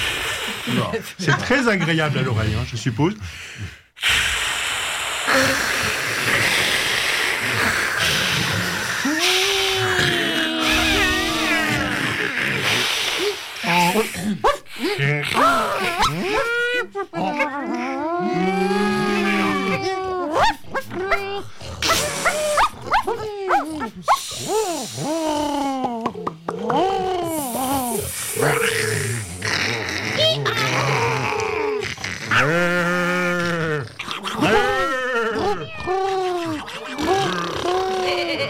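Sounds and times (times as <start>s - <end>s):
breathy hisses and short gasps: 0.0s - 1.0s, 3.2s - 15.8s, 21.5s - 22.6s, 23.9s - 25.8s, 27.2s - 31.2s
speech: 0.7s - 4.3s, 5.3s - 6.6s, 13.9s - 18.9s
voice imitating an elephant: 5.3s - 38.4s.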